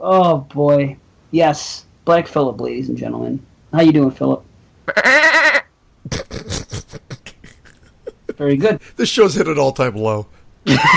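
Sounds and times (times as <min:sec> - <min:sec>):
speech: 0:00.0 - 0:05.2, 0:08.4 - 0:10.9
goat or sheep bleating: 0:04.9 - 0:05.7
laughter: 0:06.0 - 0:10.9.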